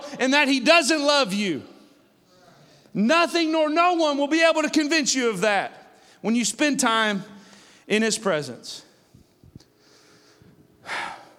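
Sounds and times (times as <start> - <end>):
speech: 0.2 - 1.7, 2.9 - 8.9
person taking a breath: 7.4 - 7.9, 9.8 - 11.3.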